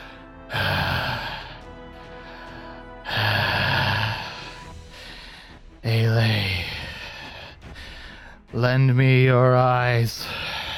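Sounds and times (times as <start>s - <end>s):
man breathing heavily after drinking a glowing brew: 0.0s - 5.8s, 6.4s - 8.5s, 10.2s - 10.7s
speech: 8.6s - 10.5s.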